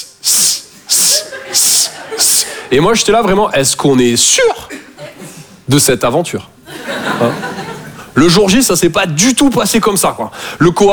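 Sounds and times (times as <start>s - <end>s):
person imitating a snake with breathy hisses: 0.0s - 2.6s
laughter: 0.8s - 3.1s, 4.7s - 5.5s, 6.6s - 8.2s
speech: 1.5s - 4.8s, 5.7s - 6.6s, 7.2s - 7.5s, 8.2s - 10.9s.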